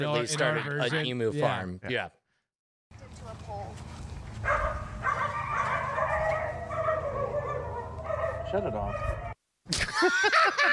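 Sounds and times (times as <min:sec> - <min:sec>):
speech: 0:00.0 - 0:02.2, 0:08.5 - 0:10.7
several dogs barking and yelping: 0:04.4 - 0:09.4
laughter: 0:09.7 - 0:10.7.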